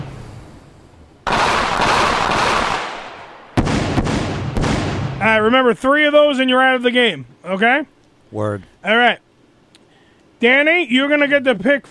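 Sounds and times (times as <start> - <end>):
gunshot sound effect: 1.3 - 5.2
speech: 5.3 - 9.2, 10.4 - 11.8.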